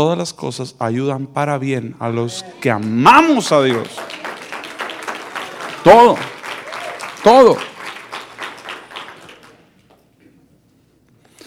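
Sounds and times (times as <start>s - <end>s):
speech: 0.0s - 4.2s, 5.8s - 6.4s, 7.2s - 7.7s
murmuring room: 2.0s - 7.6s
crowd applauding: 2.6s - 10.0s.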